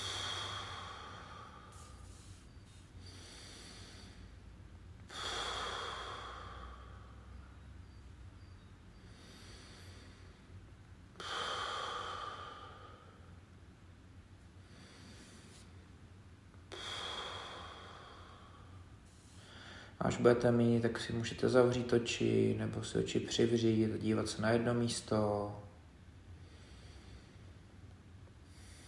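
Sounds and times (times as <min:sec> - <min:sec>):
deep breaths in through nose, out through mouth: 0:00.0 - 0:13.6, 0:14.4 - 0:20.2, 0:26.2 - 0:28.8
speech: 0:20.0 - 0:25.6.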